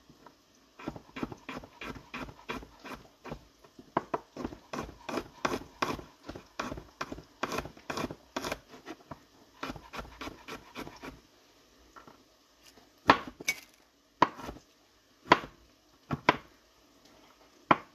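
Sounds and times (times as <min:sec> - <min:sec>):
knife chopping vegetables on a board: 0:00.8 - 0:03.4, 0:04.0 - 0:08.6, 0:09.6 - 0:11.2, 0:13.1 - 0:13.4, 0:14.2 - 0:14.6, 0:15.3 - 0:15.5.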